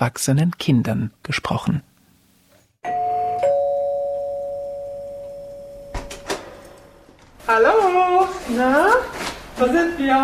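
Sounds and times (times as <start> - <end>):
speech: 0.0 - 1.9, 7.5 - 10.2
two-tone electronic doorbell chiming at an apartment door: 2.8 - 6.2.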